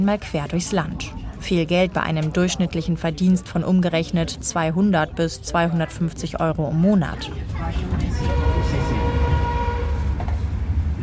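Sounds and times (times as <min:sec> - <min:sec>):
speech: 0:00.0 - 0:08.9
voices: 0:00.0 - 0:09.8
passenger train rumbling into the station at Luang Prabang Laos: 0:00.0 - 0:11.0
clanks from a passenger train: 0:07.2 - 0:10.6.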